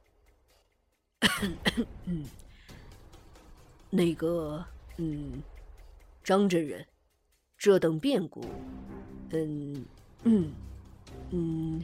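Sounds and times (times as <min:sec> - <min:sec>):
soft cough voiced by a narrator: 0:01.2 - 0:02.3
speech: 0:01.2 - 0:02.4, 0:03.9 - 0:05.5, 0:06.3 - 0:06.9, 0:07.6 - 0:10.7, 0:11.3 - 0:11.8.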